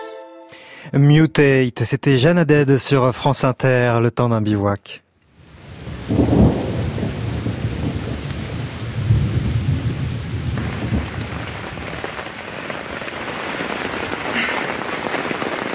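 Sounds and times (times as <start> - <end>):
speech: 0.9 - 5.0
heavy torrential rain pouring in the rainy season in Uganda: 5.4 - 15.7.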